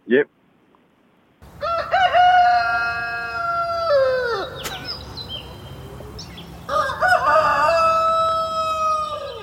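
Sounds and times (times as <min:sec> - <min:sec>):
noise: 0:00.0 - 0:09.4
speech: 0:00.1 - 0:00.4
rooster crowing: 0:01.4 - 0:05.0, 0:06.6 - 0:09.4.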